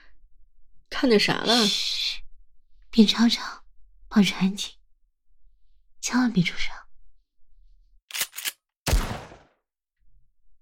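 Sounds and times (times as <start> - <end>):
speech: 1.0 - 2.0, 2.9 - 4.8, 6.0 - 6.8
gunshots fired in the wilderness: 8.9 - 9.6.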